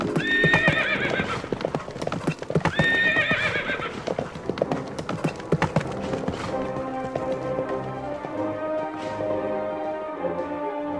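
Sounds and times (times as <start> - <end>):
wild horse whinnies: 0.0 - 1.5, 2.6 - 4.1
herd of wild horses clip-clopping: 0.0 - 10.9.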